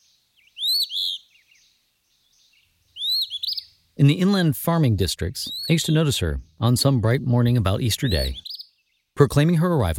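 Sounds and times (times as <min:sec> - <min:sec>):
phoebe calling: 0:00.0 - 0:01.4, 0:02.9 - 0:04.5, 0:05.4 - 0:07.0, 0:07.7 - 0:08.7
phoebe soft chirps and twitters: 0:00.0 - 0:04.5, 0:05.4 - 0:09.6
speech: 0:04.0 - 0:08.5, 0:09.2 - 0:09.9.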